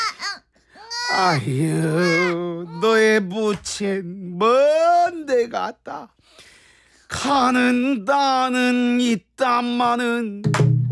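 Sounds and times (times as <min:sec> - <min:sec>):
infant crying: 0:00.0 - 0:03.3
speech: 0:01.1 - 0:04.6, 0:05.3 - 0:06.5, 0:07.1 - 0:10.6.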